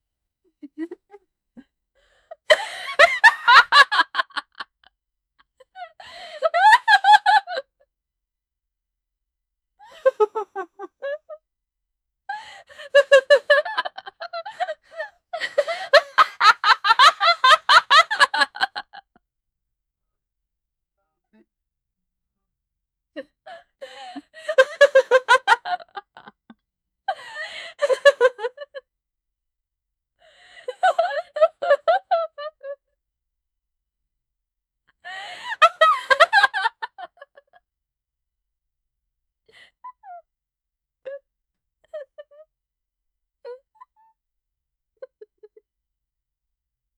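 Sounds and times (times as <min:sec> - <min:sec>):
female evil laughter: 0:00.6 - 0:01.2, 0:02.3 - 0:04.7, 0:05.8 - 0:07.7, 0:09.8 - 0:11.4, 0:12.3 - 0:19.1, 0:23.2 - 0:26.5, 0:27.1 - 0:28.8, 0:30.6 - 0:32.8, 0:35.1 - 0:37.6.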